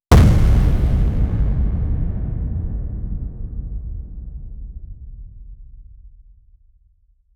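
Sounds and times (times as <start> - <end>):
hammer slam with shockwave: 0.1 - 5.6.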